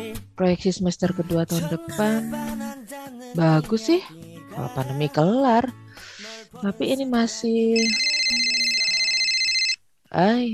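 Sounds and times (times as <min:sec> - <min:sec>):
speech: 0:00.3 - 0:02.6, 0:03.3 - 0:08.5, 0:10.1 - 0:10.5
phone ringtone with bright synthetic trill and simple melody: 0:07.8 - 0:09.8.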